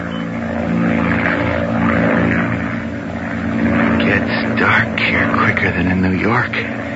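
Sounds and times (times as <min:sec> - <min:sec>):
single-engine propeller monoplane droning overhead: 0:00.0 - 0:06.9
speech: 0:05.6 - 0:06.9.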